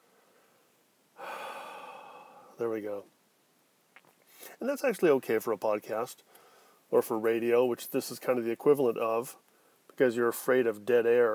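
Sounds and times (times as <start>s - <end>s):
deep airy inhale: 0.1s - 2.6s, 6.3s - 6.8s
speech: 2.6s - 3.2s, 4.6s - 11.3s.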